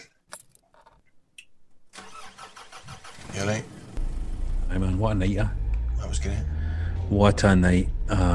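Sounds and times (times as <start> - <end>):
car engine cranking, starting and running: 2.0 - 8.3
speech: 5.1 - 6.5, 7.1 - 8.3.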